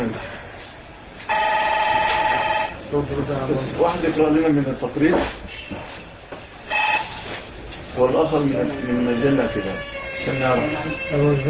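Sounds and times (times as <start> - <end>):
telephone ringing: 1.3 - 2.8, 6.7 - 7.2
speech: 2.9 - 5.8, 8.0 - 11.4.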